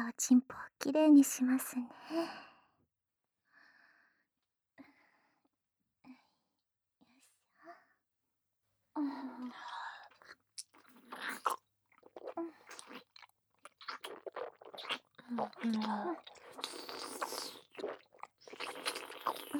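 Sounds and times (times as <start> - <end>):
speech: 0.2 - 2.5, 9.0 - 9.8, 14.1 - 16.9
wet chewing right by the ear: 10.1 - 19.5
crunchy biting with sharp clicks: 10.6 - 19.5.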